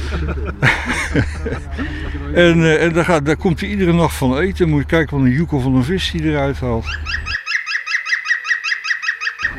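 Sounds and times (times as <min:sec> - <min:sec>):
speech: 0:00.1 - 0:07.4
male green woodpecker laughing call echoing through a forest: 0:06.8 - 0:09.5.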